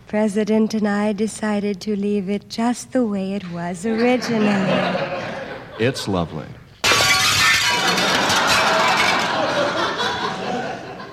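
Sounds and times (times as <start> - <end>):
speech: 0.1 - 5.1, 5.8 - 6.6
laughter: 3.9 - 6.4, 7.8 - 11.1
football crashing through glass French windows: 6.8 - 9.6.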